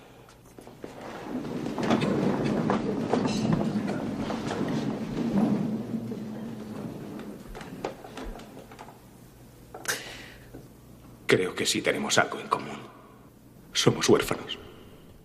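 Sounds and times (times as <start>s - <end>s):
large audience rising, shuffling and chair scraping: 0.3s - 9.2s
knocks and clatters: 0.5s - 9.1s
speech: 11.3s - 12.7s, 13.8s - 14.7s.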